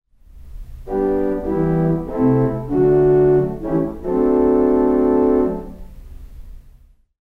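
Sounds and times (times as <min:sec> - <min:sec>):
theatre organ with diaphonic diapason stop: 0:00.9 - 0:05.9.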